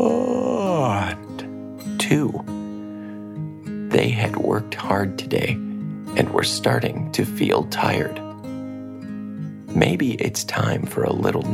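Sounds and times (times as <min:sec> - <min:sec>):
voice acting out a drawn-out groaning yawn: 0:00.0 - 0:01.2
speech: 0:02.1 - 0:02.5, 0:03.9 - 0:08.2, 0:09.8 - 0:11.5.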